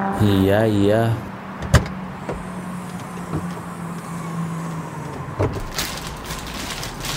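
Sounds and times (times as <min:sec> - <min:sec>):
car engine humming: 0:00.0 - 0:07.1
speech: 0:00.2 - 0:01.3, 0:03.3 - 0:03.5
car trunk opening in a parking lot: 0:01.6 - 0:06.1.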